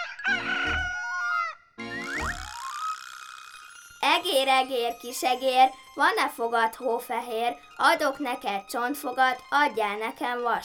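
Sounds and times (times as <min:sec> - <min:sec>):
rooster crowing: 0:00.0 - 0:01.6
speech: 0:04.2 - 0:10.6.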